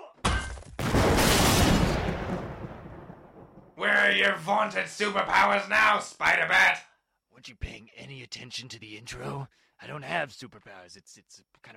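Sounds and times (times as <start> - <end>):
bomb explosion inside a tub of green beans: 0.8 - 3.8
speech: 3.8 - 11.7.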